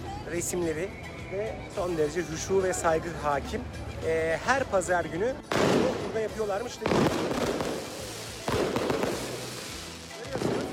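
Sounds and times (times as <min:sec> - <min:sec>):
speech: 0:00.3 - 0:07.7
sharp loud firework burst: 0:05.5 - 0:06.1, 0:06.9 - 0:09.8
fireworks popping and crackling outdoors: 0:05.5 - 0:10.7.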